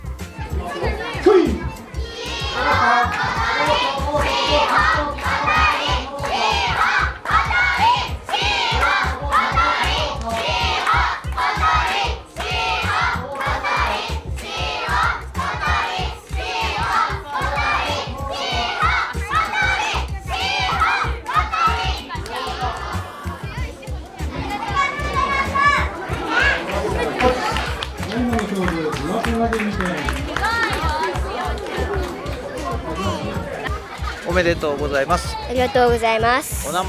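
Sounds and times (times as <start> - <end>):
families cheering at a children's sumo tournament: 0.0 - 36.8
laughter: 24.2 - 34.6
speech: 34.4 - 36.8.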